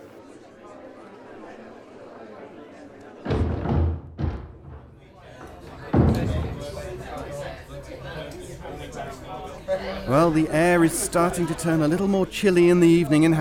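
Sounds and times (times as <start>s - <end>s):
crowd chattering: 0.0s - 13.4s
door slamming shut: 3.2s - 7.7s
speech: 9.0s - 13.4s.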